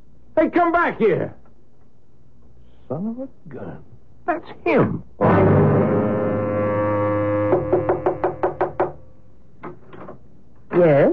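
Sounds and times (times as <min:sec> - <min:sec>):
speech: 0:00.4 - 0:01.4, 0:02.9 - 0:06.0, 0:10.8 - 0:11.1
loud sustained low horn-like tone: 0:05.2 - 0:08.4
sharp crisp knocks on a door: 0:07.5 - 0:09.0.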